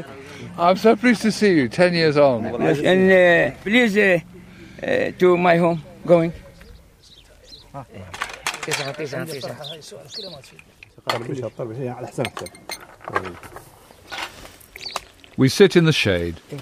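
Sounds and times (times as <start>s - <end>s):
speech: 0.0s - 6.4s, 7.7s - 13.7s, 15.4s - 16.5s
glasses of sweet tea and bowls of dry biscuits clinking: 8.1s - 9.5s, 12.1s - 13.4s.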